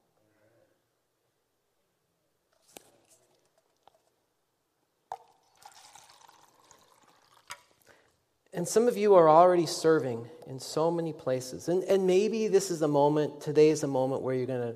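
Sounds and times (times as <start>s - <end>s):
water pouring from a jug: 5.1s - 8.1s
speech: 8.6s - 14.7s.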